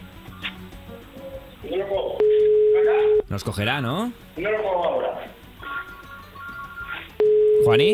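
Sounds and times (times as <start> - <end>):
speech: 1.6 - 2.2, 3.3 - 5.3, 7.7 - 7.9
telephone ringback tone: 2.2 - 3.3, 7.2 - 7.9.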